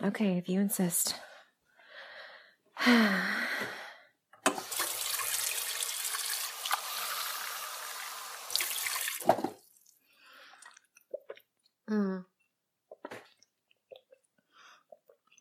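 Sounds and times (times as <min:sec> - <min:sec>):
speech: 0:00.0 - 0:01.3, 0:02.8 - 0:03.8, 0:11.9 - 0:12.3
water pouring into a glass at a friend's home: 0:04.6 - 0:10.9.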